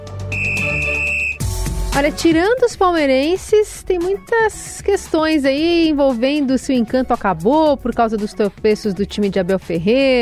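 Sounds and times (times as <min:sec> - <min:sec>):
shrill whistle blast blown as a segment cue: 0:00.3 - 0:01.6
speech: 0:02.0 - 0:10.1.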